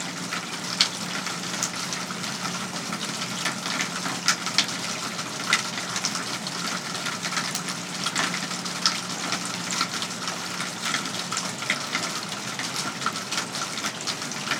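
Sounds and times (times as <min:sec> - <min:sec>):
heavy rain pouring outside a home: 0:00.0 - 0:14.5
water gushing through gutters and downspouts: 0:00.0 - 0:14.5.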